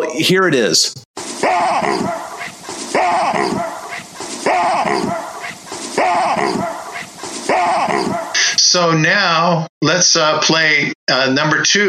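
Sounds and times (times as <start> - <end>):
speech: 0.0 - 1.0, 1.8 - 2.2, 8.7 - 11.8
baboon barking harshly: 1.3 - 8.4.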